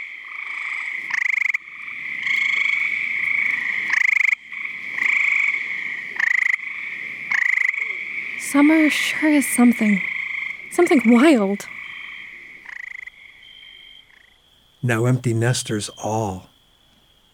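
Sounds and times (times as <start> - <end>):
gray tree frogs giving rain calls: 0.0 - 17.3
speech: 8.5 - 10.1, 10.8 - 11.7, 14.8 - 16.5.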